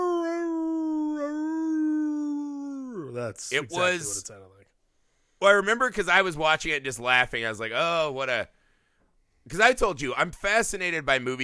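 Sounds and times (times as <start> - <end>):
person imitating a dog's howl from a film scene: 0.0 - 3.2
speech: 3.2 - 4.6, 5.4 - 8.6, 9.5 - 11.4.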